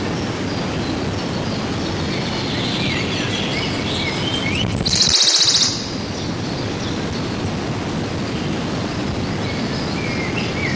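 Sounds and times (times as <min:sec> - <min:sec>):
constant rushing background noise: 0:00.0 - 0:10.7
Western Bonelli's warbler singing a dry trill of fast high notes: 0:04.9 - 0:05.9.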